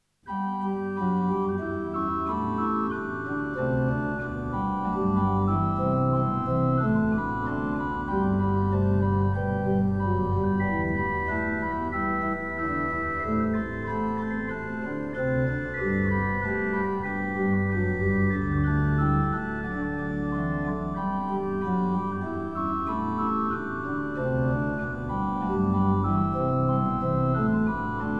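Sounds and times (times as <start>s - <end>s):
organ playing: 0.3s - 28.1s.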